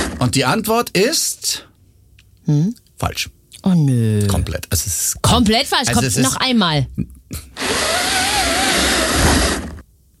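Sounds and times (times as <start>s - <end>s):
speech: 0.2s - 1.7s, 2.4s - 7.9s
pleated window blind being pulled up: 7.6s - 9.8s.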